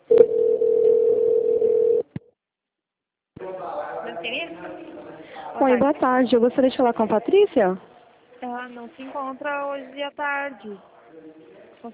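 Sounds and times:
telephone line tone while a call is transferred through a phone menu: 0:00.1 - 0:02.1
speech: 0:05.6 - 0:11.9.

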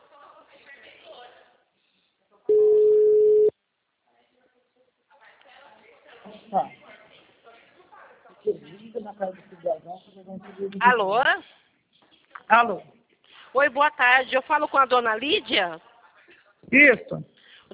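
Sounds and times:
quiet talk: 0:00.0 - 0:02.8, 0:03.9 - 0:13.5, 0:15.4 - 0:17.7
ringback tone of an outgoing phone call: 0:02.5 - 0:03.5
speech: 0:09.0 - 0:11.6, 0:12.5 - 0:15.9, 0:16.7 - 0:17.3.

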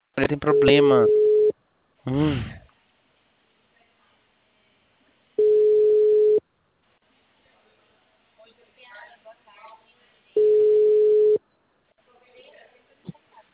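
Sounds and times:
speech: 0:00.2 - 0:01.2, 0:02.0 - 0:02.6
telephone busy tone after a dropped call: 0:00.5 - 0:01.5, 0:05.4 - 0:06.4, 0:10.4 - 0:11.4.

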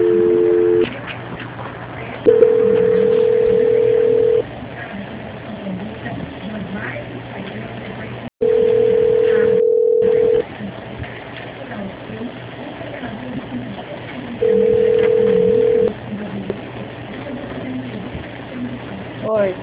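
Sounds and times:
low-pitched telephone line beeps during a call transfer: 0:00.0 - 0:00.8, 0:02.3 - 0:04.4, 0:08.4 - 0:10.4, 0:14.4 - 0:15.9
faint voices talking: 0:00.0 - 0:19.6.

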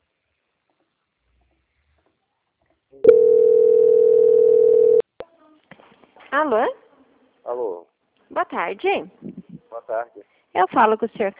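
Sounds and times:
telephone line tone during call transfer: 0:03.0 - 0:05.0
speech: 0:06.5 - 0:06.8, 0:07.5 - 0:11.3.

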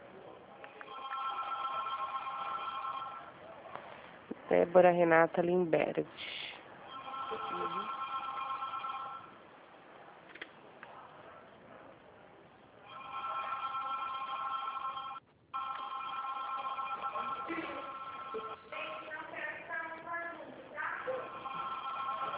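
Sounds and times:
mobile phone ringing with a warbling ringtone: 0:00.8 - 0:03.3, 0:06.9 - 0:09.4, 0:12.8 - 0:18.8, 0:21.2 - 0:22.3
speech: 0:04.5 - 0:06.4.

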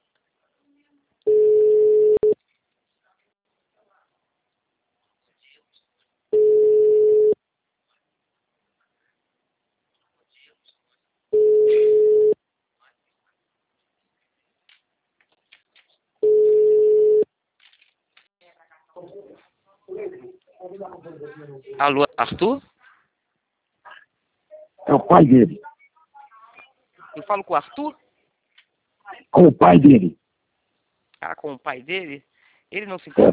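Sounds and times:
telephone ringback tone on an outgoing call: 0:01.3 - 0:02.4, 0:06.4 - 0:07.4, 0:11.4 - 0:12.4, 0:16.2 - 0:17.2
speech: 0:20.8 - 0:22.7, 0:24.9 - 0:25.7, 0:27.2 - 0:28.0, 0:29.2 - 0:30.2, 0:31.2 - 0:33.3.

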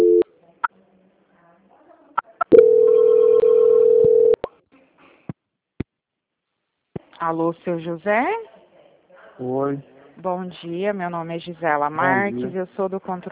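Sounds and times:
telephone line tones during a call transfer: 0:00.0 - 0:00.2, 0:02.5 - 0:04.4
speech: 0:07.2 - 0:08.6, 0:09.4 - 0:13.2.

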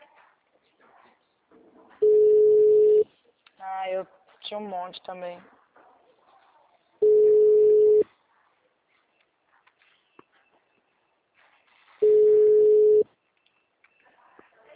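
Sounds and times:
telephone busy signal beeps: 0:02.0 - 0:03.0, 0:07.0 - 0:08.0, 0:12.0 - 0:13.0
speech: 0:04.0 - 0:05.6.

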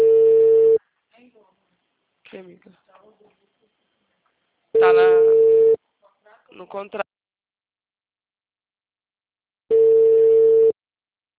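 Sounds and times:
telephone busy tone after a dropped call: 0:00.0 - 0:00.8, 0:04.8 - 0:05.8, 0:09.7 - 0:10.8
speech: 0:04.9 - 0:05.4, 0:06.6 - 0:07.1.

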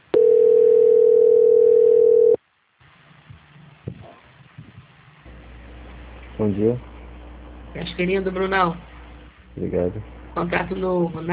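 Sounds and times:
steady single-pitched telephone tone during a call transfer: 0:00.2 - 0:02.4
speech: 0:06.4 - 0:06.9, 0:07.7 - 0:08.9, 0:09.6 - 0:11.3.

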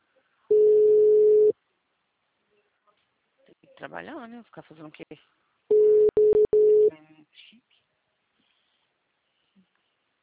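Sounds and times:
steady mid-pitched telephone call tone beep: 0:00.5 - 0:01.5, 0:05.7 - 0:06.9
speech: 0:03.8 - 0:05.4.

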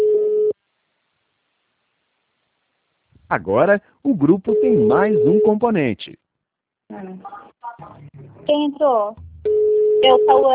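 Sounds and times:
telephone tone while a call is being placed: 0:00.0 - 0:00.6, 0:04.5 - 0:05.6, 0:09.5 - 0:10.5
speech: 0:03.3 - 0:06.2, 0:06.9 - 0:10.5.

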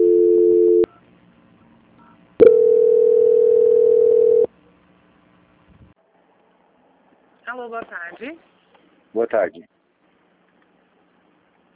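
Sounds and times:
steady telephone tone during a call transfer: 0:00.0 - 0:00.9, 0:02.4 - 0:04.5
speech: 0:07.7 - 0:08.5, 0:09.1 - 0:09.8.

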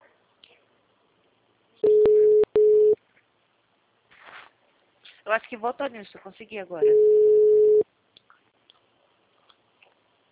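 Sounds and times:
telephone busy signal: 0:01.8 - 0:03.0, 0:06.8 - 0:07.8
speech: 0:05.3 - 0:07.4.

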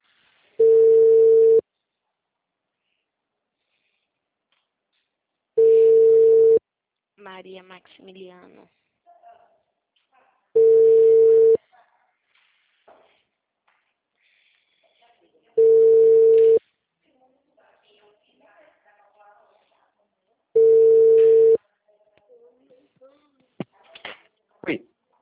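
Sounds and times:
outgoing telephone call ringback tones: 0:00.6 - 0:01.6, 0:05.6 - 0:06.6, 0:10.6 - 0:11.6, 0:15.6 - 0:16.6, 0:20.6 - 0:21.6
speech: 0:07.4 - 0:08.8, 0:24.6 - 0:24.9.

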